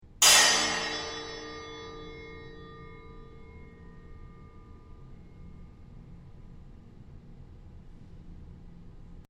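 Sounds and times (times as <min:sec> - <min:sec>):
triangle struck on railing: 0:00.2 - 0:05.4.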